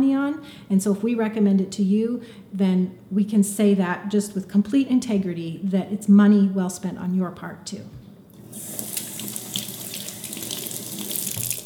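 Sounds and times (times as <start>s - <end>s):
speech: 0.3s - 8.0s
filtered water running from a faucet: 8.3s - 11.6s.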